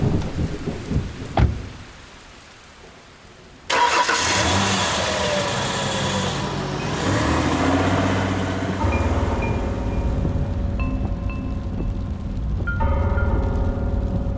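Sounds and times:
sharp thunderclap and low rumble: 0.0s - 1.9s, 6.4s - 14.3s
heavy rain: 0.0s - 14.3s
vehicle engine humming: 3.7s - 14.3s.

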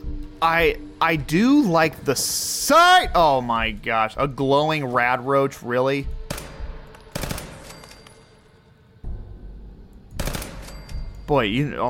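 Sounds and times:
speech: 0.4s - 6.2s, 11.3s - 11.8s
pistol gunshots in a video game: 6.3s - 8.0s, 10.2s - 10.9s.

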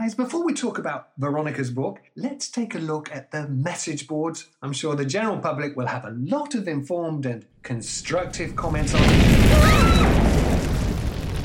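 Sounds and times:
speech: 0.0s - 10.2s
explosion rupturing a wall: 8.2s - 11.4s
heavy rumbling roar of crumbling debris: 8.2s - 11.4s.

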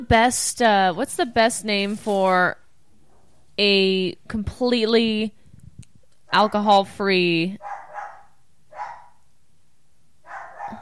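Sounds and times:
speech: 0.0s - 2.6s, 3.6s - 5.4s, 6.3s - 7.7s
dog barking loudly: 7.6s - 9.2s, 10.2s - 10.8s.

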